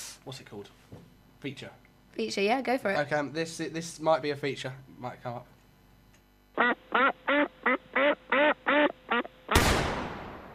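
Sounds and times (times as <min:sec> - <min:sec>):
speech: 0:00.2 - 0:05.6, 0:06.6 - 0:07.2
duck quacking: 0:06.6 - 0:09.4
sharp gunshot-like bang: 0:09.6 - 0:10.5.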